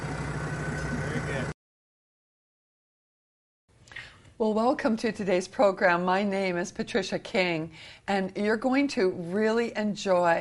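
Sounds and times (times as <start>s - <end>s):
big tractor engine chugging at a low throbbing idle: 0.0s - 1.5s
speech: 4.4s - 10.3s.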